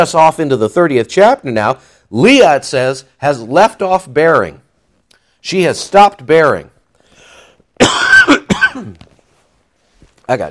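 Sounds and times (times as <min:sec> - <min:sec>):
speech: 0:00.0 - 0:04.6, 0:05.4 - 0:06.7, 0:10.3 - 0:10.4
person coughing with a throaty rasp: 0:07.8 - 0:09.1.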